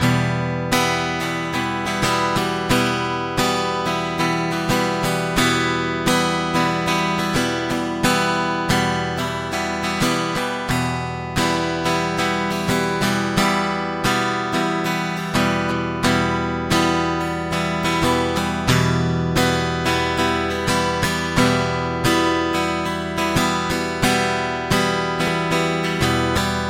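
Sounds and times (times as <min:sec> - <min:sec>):
guitar strumming in E minor: 0:00.0 - 0:26.6.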